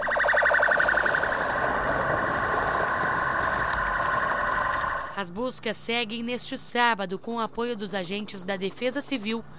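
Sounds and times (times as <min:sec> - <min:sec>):
volunteer fire brigade station siren in Presidente Getúlio Brazil calling out rescuers: 0:00.0 - 0:05.2
speech: 0:05.2 - 0:09.5.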